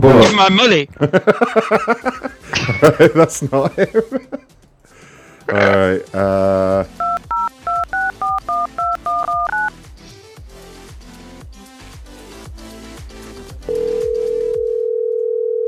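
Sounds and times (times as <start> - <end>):
speech: 0.0 - 4.4, 5.5 - 7.0
telephone keypad dialing tones: 7.0 - 9.7, 13.7 - 15.6.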